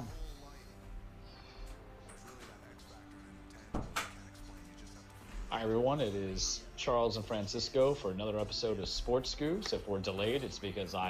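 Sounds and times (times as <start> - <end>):
door being shut: 3.6 - 4.3
speech: 5.5 - 11.0.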